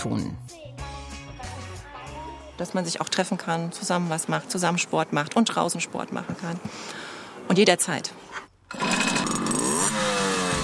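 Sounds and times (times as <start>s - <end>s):
speech: 0.0s - 0.6s, 2.6s - 8.2s
small two-stroke moped engine revving: 8.7s - 10.6s.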